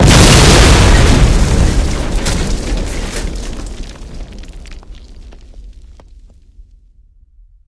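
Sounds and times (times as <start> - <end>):
explosions: 0.0 - 6.1
heavy debris: 0.0 - 6.3.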